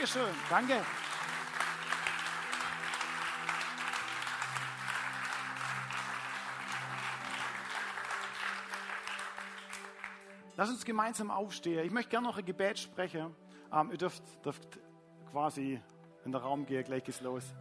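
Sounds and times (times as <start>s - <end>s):
speech: 0.0s - 1.0s, 10.6s - 17.5s
sustained applause from a sizable audience: 0.0s - 10.4s.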